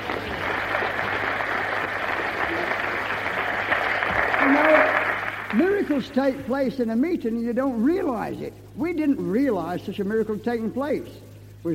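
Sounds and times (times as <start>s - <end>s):
crowd clapping: 0.0s - 6.3s
speech: 5.9s - 11.7s.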